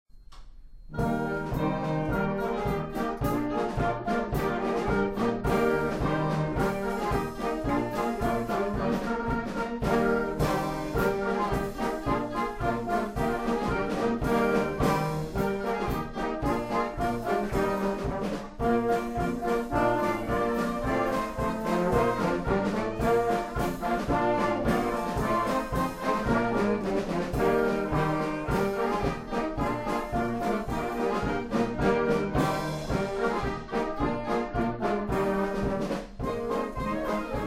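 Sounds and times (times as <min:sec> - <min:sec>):
German polka music: 0:00.9 - 0:37.4.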